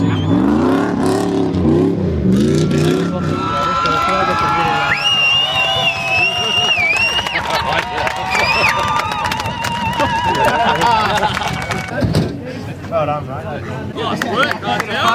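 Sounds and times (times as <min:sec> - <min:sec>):
car engine revving while hooning in a muddy paddock: 0:00.0 - 0:06.6
crowd chattering and cheering: 0:00.0 - 0:15.1
laughter: 0:06.2 - 0:12.9.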